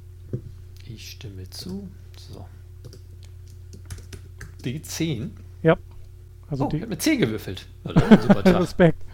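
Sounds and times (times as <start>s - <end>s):
steady low hum: 0.0s - 9.1s
speech: 0.3s - 3.0s, 4.6s - 5.9s, 6.5s - 9.1s
computer keyboard typing a web search: 2.8s - 4.8s
laughter: 7.9s - 8.9s.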